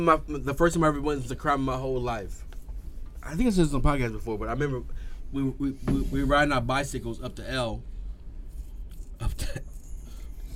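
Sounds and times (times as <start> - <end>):
speech: 0.0 - 2.5, 3.2 - 7.9, 9.2 - 9.7
throaty cough: 9.2 - 9.8.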